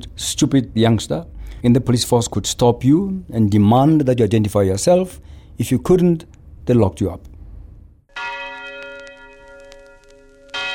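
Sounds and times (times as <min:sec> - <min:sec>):
speech: 0:00.0 - 0:07.3
large bell ringing: 0:08.1 - 0:10.7.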